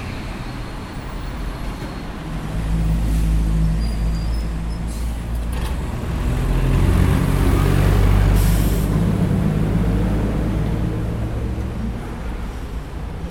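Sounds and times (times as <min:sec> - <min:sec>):
continuous low roadway drone: 0:00.0 - 0:13.3
dense city street traffic rumbling beside a main avenue: 0:00.0 - 0:13.3
heavy engines of trucks and buses pulling off: 0:00.0 - 0:13.3
hissing air brake release: 0:04.8 - 0:05.4, 0:08.3 - 0:09.0.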